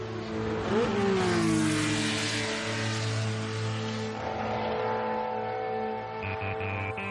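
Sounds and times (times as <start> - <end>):
car engine idling and revving: 0.2 - 5.4
laughter: 6.2 - 7.0.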